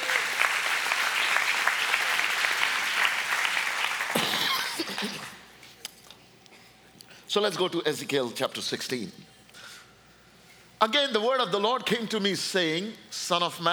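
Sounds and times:
crowd applause as an offering: 0.0 - 5.4
speech: 7.3 - 9.3, 10.8 - 13.7.

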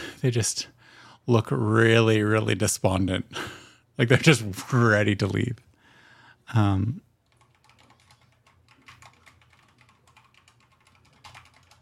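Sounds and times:
speech: 0.2 - 5.7, 6.5 - 7.0
rapid computer keyboard typing: 7.2 - 11.8.

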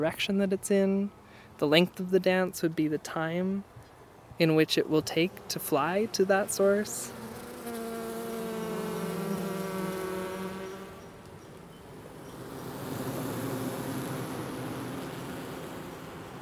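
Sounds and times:
speech: 0.0 - 3.7, 4.4 - 7.2
many honeybees buzzing during a hive inspection with the hive broken down: 4.4 - 16.4.

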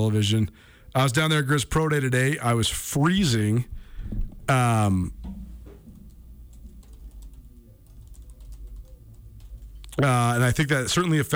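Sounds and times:
speech: 0.0 - 5.2, 10.0 - 11.3
low hum: 0.0 - 11.3
computer keyboard clicks: 5.2 - 10.0.

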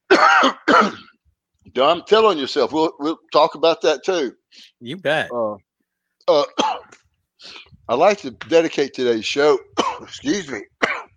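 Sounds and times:
coughing: 0.1 - 1.2, 6.4 - 7.0, 9.8 - 10.1, 10.8 - 11.1
throat clearing: 0.2 - 1.2
speech: 1.8 - 5.7, 6.3 - 10.7.

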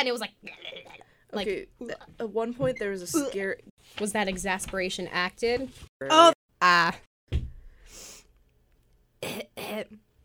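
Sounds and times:
speech: 0.0 - 0.7, 1.3 - 7.4, 9.3 - 10.0
person coughing: 9.2 - 10.0.

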